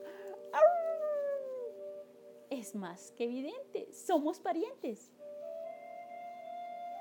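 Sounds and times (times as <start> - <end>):
wolf howling with joy: 0.5 - 2.0
speech: 2.6 - 5.2.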